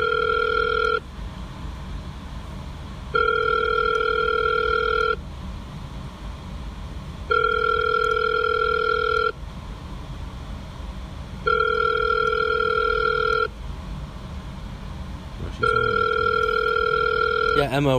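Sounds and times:
outgoing phone call ringback tone: 0.0s - 1.0s, 3.1s - 5.2s, 7.3s - 9.4s, 11.4s - 13.5s, 15.6s - 17.7s
low rumble: 0.0s - 17.9s
speech: 17.7s - 17.9s.

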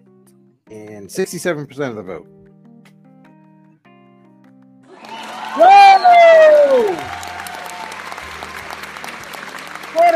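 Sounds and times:
speech: 0.7s - 2.4s
crowd applauding: 4.9s - 10.1s
faint cheering: 4.9s - 10.1s
brief falling whistle-like tone: 5.0s - 7.6s.

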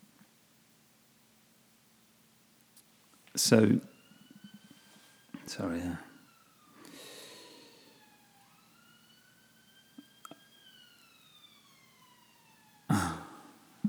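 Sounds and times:
speech: 3.4s - 3.9s, 5.5s - 6.1s
siren wailing: 3.4s - 13.8s
breathy snort: 12.9s - 13.6s.

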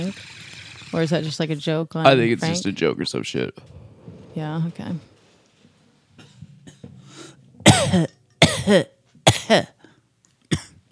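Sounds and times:
speech: 0.0s - 3.8s, 4.4s - 5.1s, 7.8s - 9.8s
low rumbling: 3.4s - 7.8s
person coughing harshly after a bong hit: 7.6s - 9.8s, 10.5s - 10.8s.

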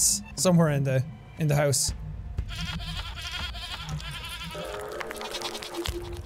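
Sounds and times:
speech: 0.4s - 2.1s
goat bleating from a radio: 2.5s - 6.2s.

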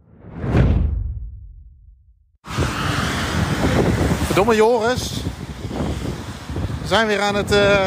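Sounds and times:
strong wind gusting outdoors in Greenock: 2.4s - 7.8s
speech: 4.4s - 5.3s, 6.9s - 7.8s.

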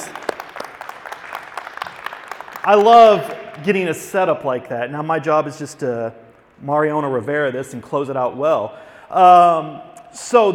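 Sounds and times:
audience applause: 0.0s - 3.5s
speech: 2.6s - 10.5s.

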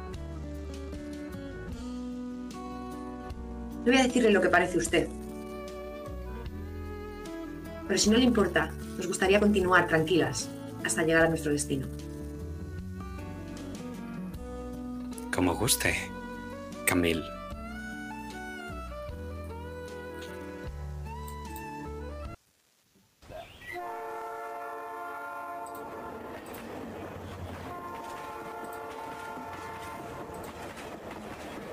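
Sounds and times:
speech: 3.8s - 5.2s, 7.9s - 12.0s, 15.4s - 16.2s, 16.9s - 17.4s
loud steam train whistle blasting: 23.7s - 26.7s, 27.5s - 30.8s
steady rumble and clatter of a moving train: 25.7s - 31.7s.

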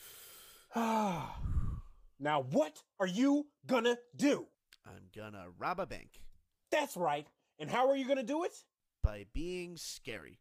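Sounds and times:
deep breath: 0.0s - 2.1s
speech: 0.7s - 1.5s, 2.2s - 10.4s.

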